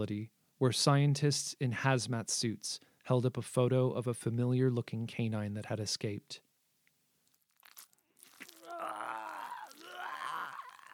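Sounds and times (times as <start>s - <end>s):
speech: 0.0s - 6.5s
teeth crunching into a man's throat: 7.2s - 10.9s
chewing sounds: 7.3s - 10.9s
strained groan: 8.5s - 10.9s.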